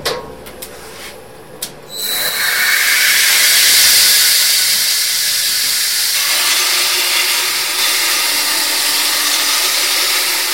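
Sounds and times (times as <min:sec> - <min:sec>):
belt sander running: 0:02.3 - 0:10.5.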